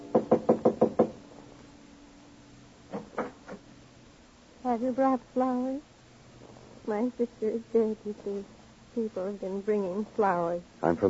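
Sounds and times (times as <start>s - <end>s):
knuckles rapping on a wooden panel door: 0.1s - 1.2s
speech: 4.8s - 5.9s, 6.9s - 11.0s.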